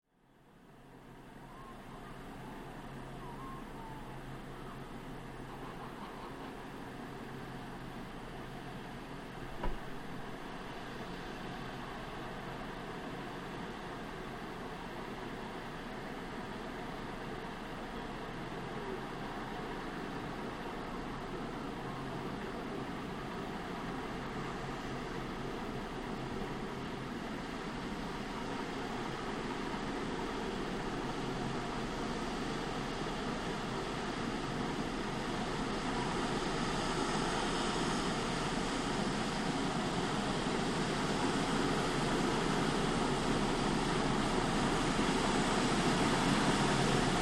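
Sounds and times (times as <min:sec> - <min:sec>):
road sweeper truck passing and cleaning street: 0:04.2 - 0:47.2.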